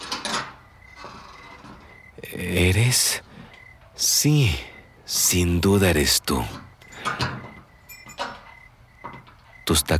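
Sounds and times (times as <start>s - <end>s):
wooden door creaking open: 0.0s - 2.3s, 6.3s - 9.9s
speech: 2.2s - 3.3s, 4.0s - 6.7s, 9.7s - 9.9s.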